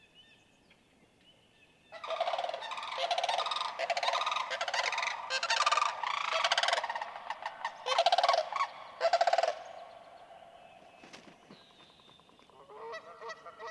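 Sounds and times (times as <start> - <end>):
sandhill crane calling with rolling trumpeting rattles: 1.9 - 11.8.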